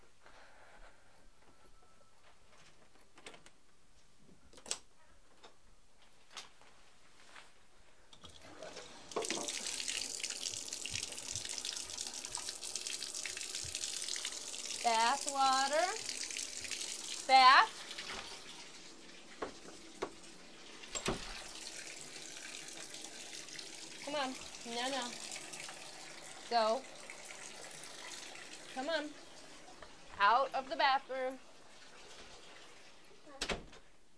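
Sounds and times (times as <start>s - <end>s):
tap water running into a bathtub: 8.2s - 33.3s.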